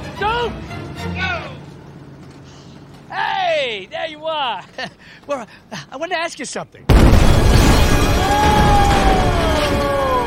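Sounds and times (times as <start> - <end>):
speech: 0.2 - 1.6, 3.1 - 8.6
trailer exploding: 6.9 - 10.2.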